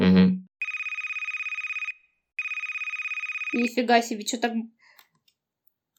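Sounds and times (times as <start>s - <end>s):
Telegram call ringtone with bright rapidly pulsing electronic tone: 0.6s - 3.8s
speech: 3.5s - 5.0s.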